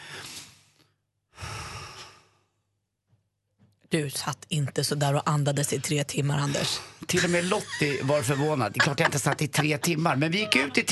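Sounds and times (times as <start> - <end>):
forceful paced labor breathing exercise: 0.0 - 2.7
speech: 3.9 - 10.9
laughter: 7.1 - 10.9.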